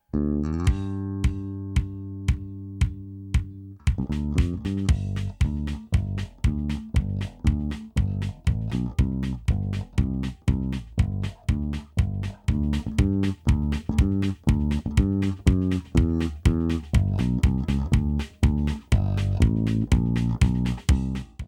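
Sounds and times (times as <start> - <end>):
compressed bass: 0.0 - 21.4
compressed kick drum: 0.7 - 21.4.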